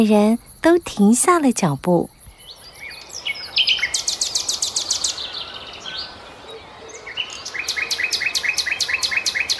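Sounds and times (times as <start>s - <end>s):
speech: 0.0s - 2.2s
faint hiss: 0.0s - 9.5s
nightingale singing in a forest: 0.0s - 9.5s.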